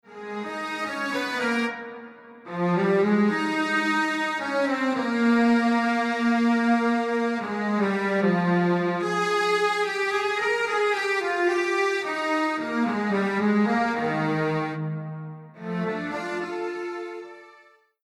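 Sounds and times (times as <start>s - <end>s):
dual strings playing: 0.2s - 17.7s.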